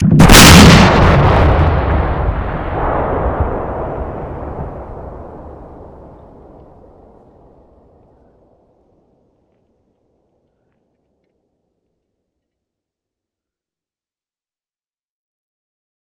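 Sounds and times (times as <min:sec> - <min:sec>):
big explosion: 0:00.0 - 0:08.0.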